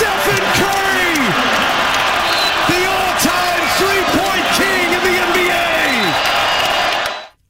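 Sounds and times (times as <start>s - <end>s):
packed arena crowd roaring after a record shot in a basketball game: 0.0s - 7.3s
scattered shouts and whoops from arena crowd: 0.0s - 7.3s.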